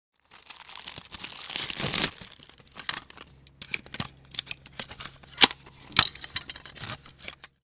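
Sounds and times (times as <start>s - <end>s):
plastic cassette case opening during unboxing: 1.6s - 7.5s.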